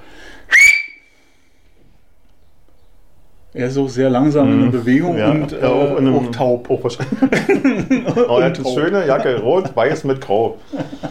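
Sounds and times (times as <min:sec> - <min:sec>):
person whistling: 0:00.5 - 0:01.2
speech: 0:03.5 - 0:11.1
laughter: 0:04.8 - 0:11.1.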